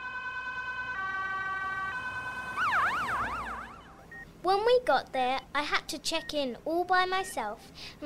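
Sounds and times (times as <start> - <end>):
ambulance siren in two-tone hi-lo pattern and wail: 0.0 - 4.2
speech: 4.4 - 8.0.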